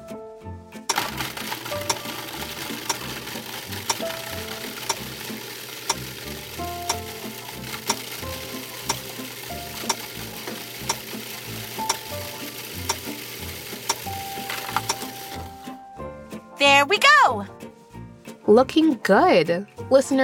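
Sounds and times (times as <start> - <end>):
food processor grinding dried apricots: 0.9 - 15.6
speech: 18.5 - 20.2.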